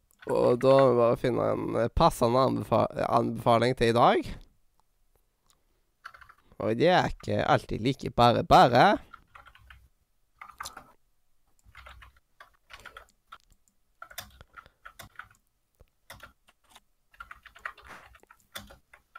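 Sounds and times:
speech: 0.2 - 4.4, 6.6 - 9.1
rapid uneven typing on a computer keyboard: 6.0 - 6.5, 9.0 - 9.8, 10.4 - 10.9, 11.6 - 15.4, 16.0 - 19.1.

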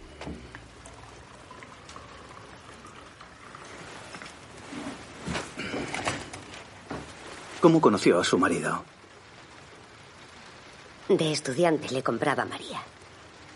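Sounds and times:
coffee poured into a cup: 0.0 - 6.5
speech: 7.6 - 9.0, 11.1 - 13.0.

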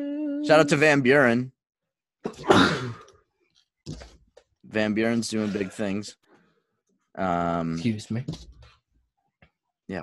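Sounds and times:
speech: 0.0 - 1.6, 2.2 - 3.0, 4.7 - 6.2, 7.2 - 8.5
person sneezing: 2.3 - 3.1.

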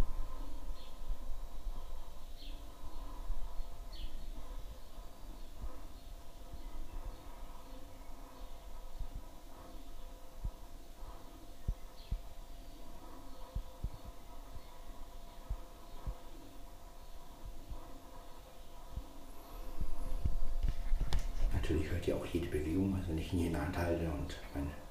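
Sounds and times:
birds chirping: 0.0 - 24.8
steady low background hum: 0.0 - 24.8
speech: 21.7 - 24.8.

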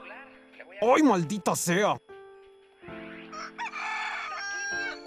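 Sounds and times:
speech: 0.8 - 2.1
rooster crowing: 3.3 - 5.0.

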